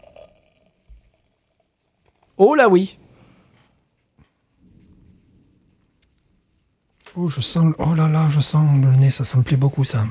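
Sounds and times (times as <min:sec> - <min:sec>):
speech: 0:02.4 - 0:03.0, 0:07.2 - 0:10.0
rolling thunder: 0:04.6 - 0:06.0.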